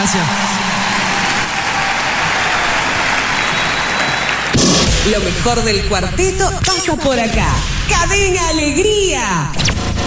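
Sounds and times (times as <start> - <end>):
sustained audience applause: 0.0 - 4.9
speech: 0.1 - 0.6, 5.0 - 9.9.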